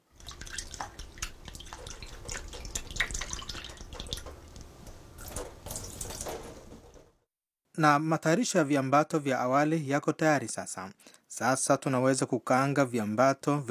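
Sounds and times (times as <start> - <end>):
tap water running while dried raisins are rinsed in a strainer: 0.0 - 7.1
speech: 7.8 - 13.6.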